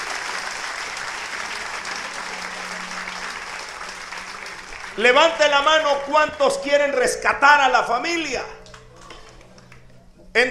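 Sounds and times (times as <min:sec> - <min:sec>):
crowd clapping for young people at an event: 0:00.0 - 0:07.1, 0:08.6 - 0:10.0
speech: 0:05.0 - 0:08.6.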